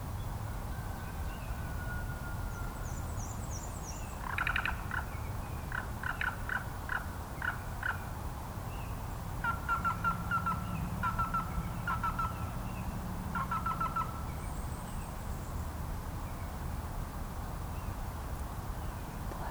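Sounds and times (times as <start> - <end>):
steady hiss of outdoor noise: 0.0 - 19.4
black-billed cuckoo rolling croaking call: 9.4 - 12.5, 13.3 - 14.3.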